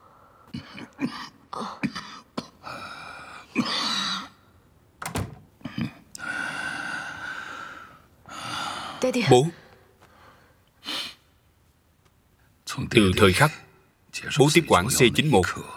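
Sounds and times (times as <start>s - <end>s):
speech: 1.6s - 1.9s, 9.1s - 9.6s, 13.0s - 13.6s, 14.3s - 15.7s
door shutting with a solid thud: 5.0s - 5.6s.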